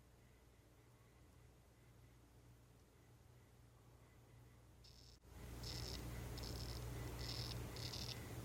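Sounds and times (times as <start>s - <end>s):
low constant hum: 0.0s - 8.4s
Uakari poison frog Ranitomeya uakarii buzzy call: 4.8s - 8.3s.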